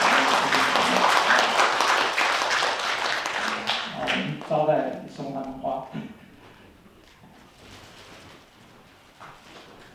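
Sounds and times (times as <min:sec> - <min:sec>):
audience at a Christian worship service clapping to welcome newly baptized members: 0:00.0 - 0:05.0
speech: 0:05.2 - 0:06.2.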